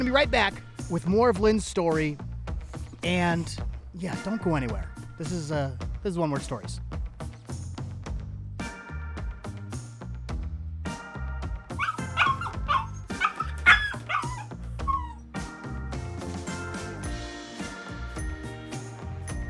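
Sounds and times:
music with a bass line and chords: 0.0 - 19.4
speech: 0.1 - 2.2, 3.0 - 6.9
dog squealing and yelping: 11.8 - 15.2.

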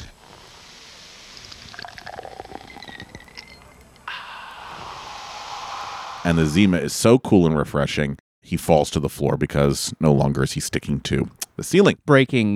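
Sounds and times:
drink fizzing hiss: 0.4 - 6.8
Zima poured into a glass: 1.4 - 4.1
speech: 6.2 - 12.5.

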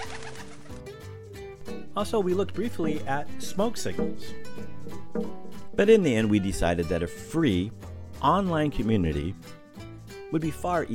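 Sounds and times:
pigeon cooing: 0.0 - 0.8
speech: 2.0 - 9.6, 10.3 - 10.9.

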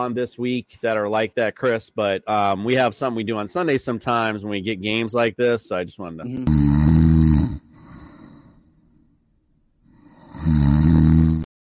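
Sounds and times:
speech: 0.0 - 6.8
loud rumbling snore: 6.4 - 8.5, 10.0 - 11.5
soft breathy exhale: 7.7 - 8.8, 9.9 - 10.9.

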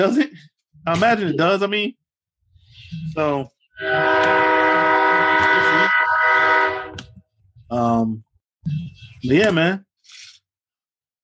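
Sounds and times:
speech: 0.0 - 2.0, 2.9 - 4.6, 7.7 - 9.9
rumbling rail noise of passing train: 3.8 - 7.0
train horn: 3.8 - 7.0.

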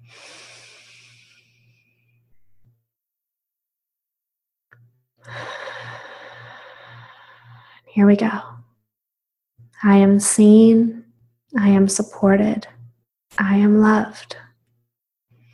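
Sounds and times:
deep inhale and exhale breathing during a guided meditation: 0.0 - 2.6, 5.2 - 7.9
speech: 8.0 - 8.6, 9.8 - 11.0, 11.6 - 14.4.

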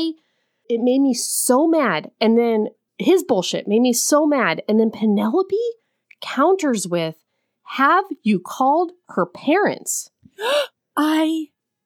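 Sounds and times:
speech: 0.0 - 11.5
person gasping sharply: 10.4 - 10.7.

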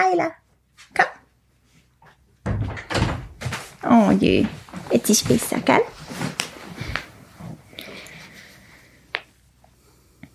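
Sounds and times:
speech: 0.0 - 1.2, 3.8 - 6.4
door clunking open with a squeaky click: 2.4 - 3.7
dog scuffling and rustling coming indoors: 3.4 - 7.6.

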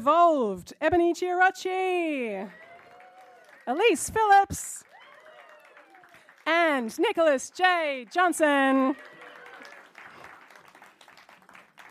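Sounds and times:
speech: 0.0 - 2.6, 3.7 - 4.9, 6.4 - 9.1
audience applause: 2.5 - 6.5, 8.1 - 11.8.

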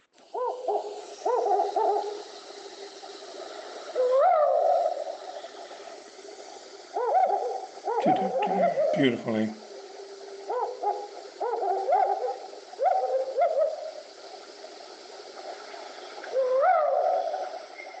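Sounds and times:
African wood owl hooting: 0.3 - 2.4, 3.9 - 5.6, 6.8 - 9.1, 10.3 - 14.1, 16.3 - 17.9
speech: 8.0 - 9.6.

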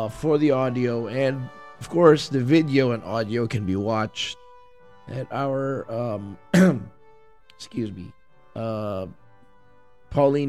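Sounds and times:
speech: 0.0 - 4.4, 5.1 - 7.0, 7.6 - 9.2, 10.1 - 10.4
person with a sore throat clearing throat: 6.5 - 6.9
person with a sore throat coughing: 6.5 - 7.0.

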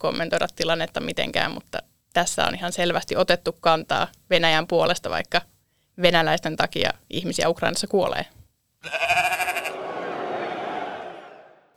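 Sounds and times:
speech: 0.0 - 9.2
sheep bleating: 8.8 - 9.8
laughter: 9.5 - 11.6.

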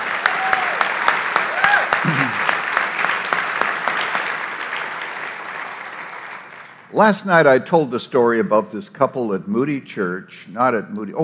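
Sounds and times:
audience clapping for a minister: 0.0 - 7.0
speech: 7.0 - 11.2.

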